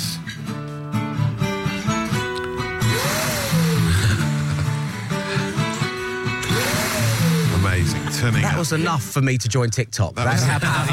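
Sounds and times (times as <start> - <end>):
rhythmic music track: 0.0 - 9.2
vacuum cleaner loud whooshing roar: 2.6 - 8.9
laughter: 7.5 - 9.2, 10.2 - 10.9
speech: 8.2 - 10.9.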